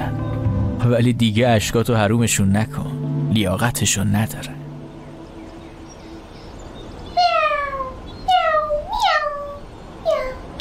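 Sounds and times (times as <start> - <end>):
speech: 0.8 - 4.6
cat meowing: 7.1 - 10.5.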